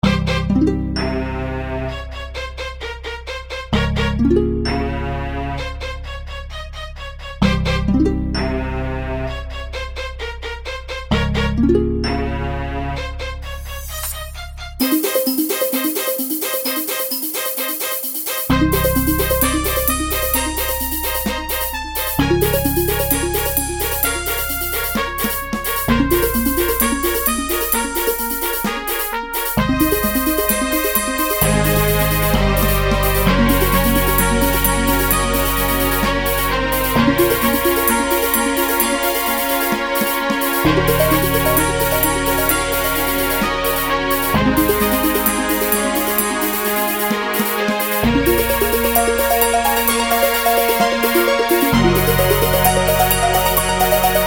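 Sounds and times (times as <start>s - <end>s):
brass: 0.0s - 2.5s, 8.4s - 11.5s, 16.0s - 54.2s
virtual harp: 0.0s - 2.5s, 3.7s - 6.4s, 7.4s - 9.8s, 11.1s - 17.5s, 18.5s - 54.2s
strings: 0.0s - 54.2s
glockenspiel: 14.8s - 54.2s.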